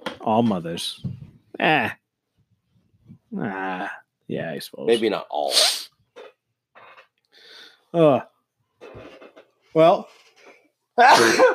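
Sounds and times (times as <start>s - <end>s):
speech: 0.2s - 2.0s, 3.3s - 5.8s, 7.9s - 8.3s, 9.8s - 10.2s, 11.0s - 11.5s
person sneezing: 11.0s - 11.5s.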